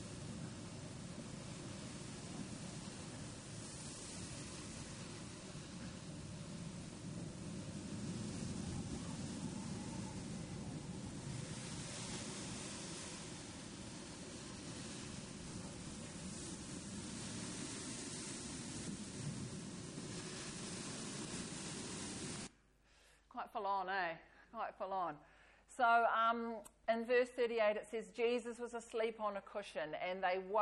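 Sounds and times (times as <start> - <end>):
churning waves in a storm at sea around a cargo ship: 0.0 - 22.5
roaring wind of a storm at sea around a cargo ship: 0.0 - 22.5
speech: 23.5 - 30.6.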